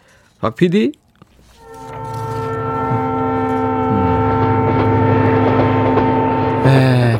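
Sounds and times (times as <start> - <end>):
speech: 0.4 - 1.0
train horn blasting: 1.4 - 7.1.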